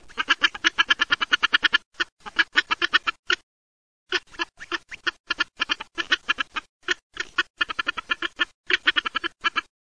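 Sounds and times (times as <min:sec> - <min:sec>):
Andean goose: 0:00.0 - 0:03.4, 0:04.1 - 0:09.7.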